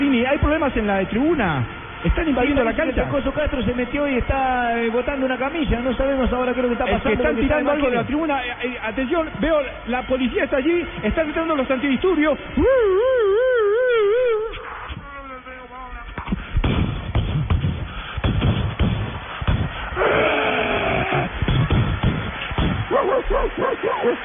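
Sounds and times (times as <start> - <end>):
loud busy crowd at a football stadium during a pitch invasion: 0.0 - 24.2
speech: 0.3 - 13.4
dogs yelping and barking: 22.9 - 24.2.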